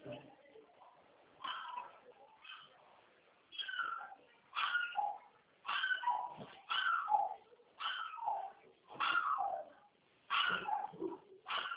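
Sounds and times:
small dog barking in short yappy bursts: 1.4s - 2.7s, 3.7s - 9.7s, 10.3s - 11.7s.

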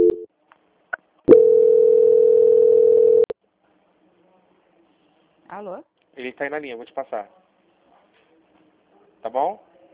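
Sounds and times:
telephone tones during a call transfer: 0.0s - 0.2s, 1.3s - 3.3s
speech: 5.6s - 7.4s, 9.2s - 9.7s.

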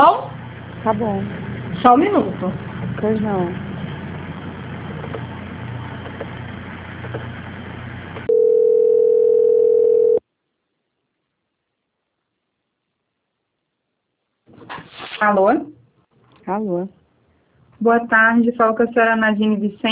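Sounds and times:
speech: 0.2s - 3.7s, 15.2s - 15.8s, 16.5s - 17.0s, 17.8s - 19.9s
steady telephone tone during a call transfer: 8.3s - 10.2s.

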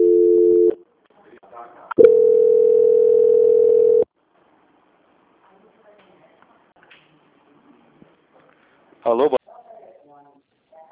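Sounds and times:
telephone call transfer tones on a bank customer service line: 2.0s - 4.1s
speech: 9.1s - 9.4s.

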